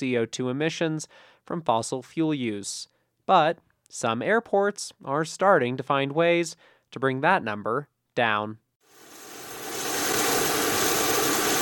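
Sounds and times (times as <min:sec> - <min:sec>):
speech: 0:00.0 - 0:08.6
lower-emission aircraft engine roar while refueling on a regional airport tarmac: 0:08.9 - 0:11.5.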